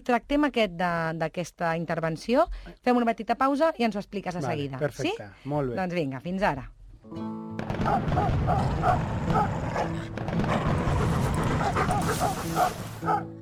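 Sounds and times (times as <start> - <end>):
speech: 0.0 - 10.9, 11.6 - 13.4
dog barking: 7.8 - 13.4.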